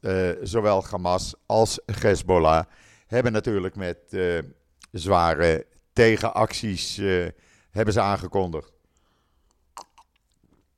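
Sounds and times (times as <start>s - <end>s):
speech: 0.0s - 8.8s
wet mouth clicks from sipping water: 8.9s - 10.7s
swallow of water: 9.4s - 10.7s.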